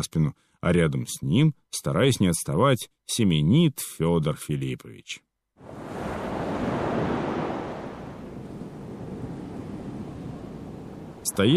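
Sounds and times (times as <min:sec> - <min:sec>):
speech: 0:00.0 - 0:06.0, 0:11.3 - 0:11.5
light wind rumble: 0:05.6 - 0:11.5
ocean waves rolling: 0:05.6 - 0:11.5.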